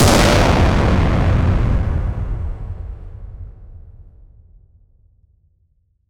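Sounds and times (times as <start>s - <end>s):
atomic bomb explosion: 0.0s - 4.0s.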